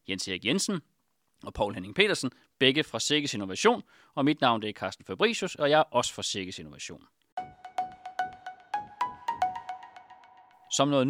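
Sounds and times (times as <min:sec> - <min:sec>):
speech: 0:00.1 - 0:07.2, 0:10.7 - 0:11.0
outgoing phone call ringing tone: 0:07.4 - 0:10.5.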